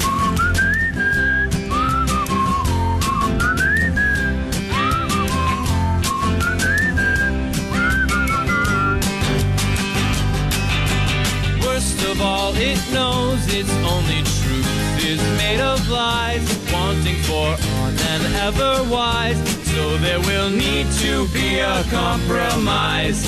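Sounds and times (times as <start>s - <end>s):
person whistling a sliding melody: 0.0s - 9.1s
band accompaniment with drums and bass: 0.0s - 23.2s
speech: 15.8s - 23.2s.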